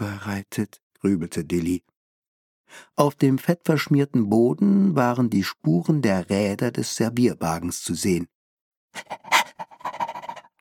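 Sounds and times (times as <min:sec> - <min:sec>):
speech: 0:00.0 - 0:01.9, 0:02.7 - 0:08.3, 0:08.9 - 0:09.4
dog barking: 0:09.0 - 0:10.5.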